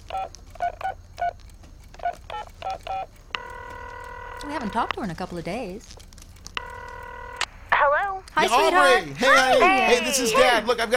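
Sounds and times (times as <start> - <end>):
electronic keypad tones of a phone number being dialed: 0.0 - 5.1, 6.6 - 7.5
speech: 4.5 - 6.0, 8.4 - 10.9.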